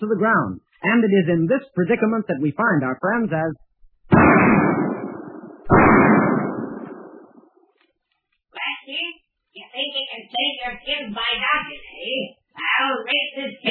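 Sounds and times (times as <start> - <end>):
speech: 0.0 - 4.8, 9.8 - 13.6
gunshots fired inside a cave: 4.1 - 7.5.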